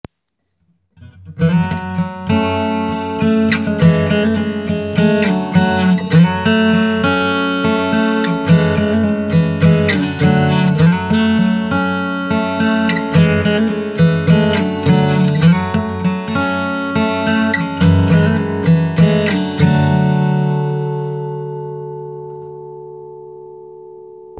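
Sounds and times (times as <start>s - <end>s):
acoustic guitar with capo on second fret: 0.1s - 24.3s.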